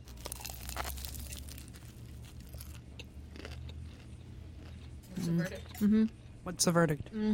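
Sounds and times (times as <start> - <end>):
biting into and chewing a crisp cabbage-filled egg roll: 0.0 - 5.4
speech: 5.3 - 7.3.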